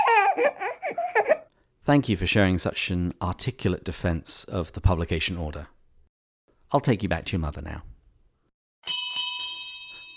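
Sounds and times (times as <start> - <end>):
speech: 0.4 - 1.0, 1.9 - 5.8, 6.7 - 7.9
last call bell ringing: 8.8 - 10.1.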